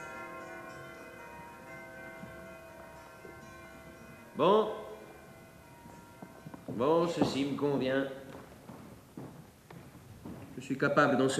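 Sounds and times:
church bells ringing: 0.0 - 8.6
speech: 4.4 - 4.8, 6.8 - 8.2, 10.7 - 11.3.

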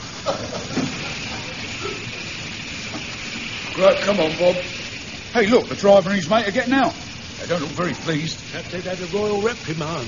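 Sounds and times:
idle steam train hissing escaping steam: 0.0 - 10.0
speech: 3.8 - 10.0.

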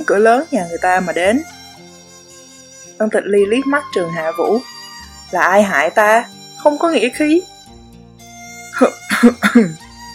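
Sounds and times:
speech: 0.1 - 1.6, 3.0 - 7.5, 8.8 - 9.8
dry cough voiced by a narrator in a spoken story: 9.1 - 9.8.

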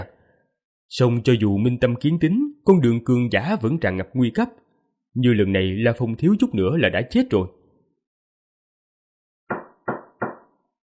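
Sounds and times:
speech: 0.9 - 4.6, 5.2 - 7.6
knocking on the door of a palace hall: 9.5 - 10.6.

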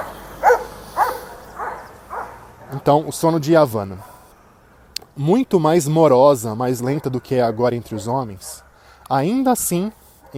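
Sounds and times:
dog barking: 0.0 - 2.8, 4.0 - 4.2, 6.8 - 8.8
speech: 2.7 - 4.1, 5.2 - 10.3.

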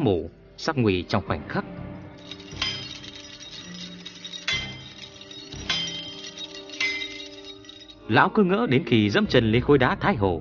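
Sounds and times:
speech: 0.0 - 1.8, 8.1 - 10.3
sharp metal knife blades fixed on a net clanging: 2.2 - 8.0.

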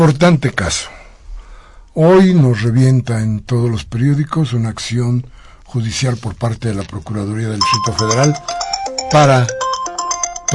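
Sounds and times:
speech: 0.0 - 1.0, 2.0 - 9.6
phone ringtone during a broadcast: 7.6 - 10.5.

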